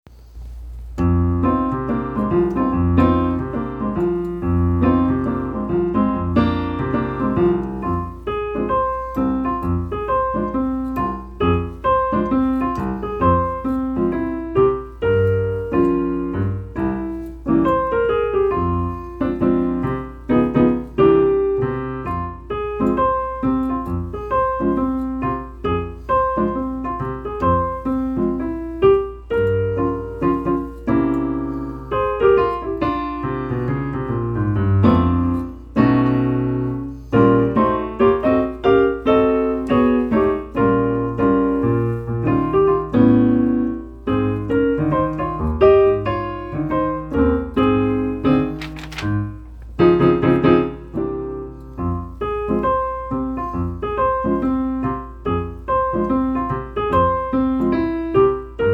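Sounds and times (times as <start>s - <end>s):
piano jazz: 0.0s - 58.7s.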